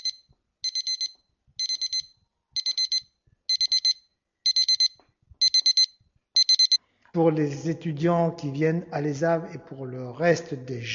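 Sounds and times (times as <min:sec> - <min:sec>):
alarm clock ringing in high-pitched beeps: 0:00.0 - 0:06.8
speech: 0:07.2 - 0:10.9.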